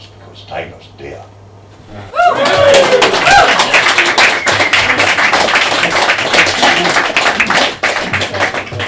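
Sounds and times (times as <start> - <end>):
speech: 0.5 - 1.3
loud crowd booing: 2.1 - 3.8
scattered clapping: 2.4 - 8.8.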